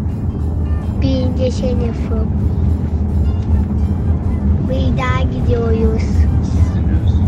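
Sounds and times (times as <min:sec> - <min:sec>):
car cabin engine and road drone while driving: 0:00.0 - 0:07.2
speech: 0:01.0 - 0:02.8, 0:04.7 - 0:06.3.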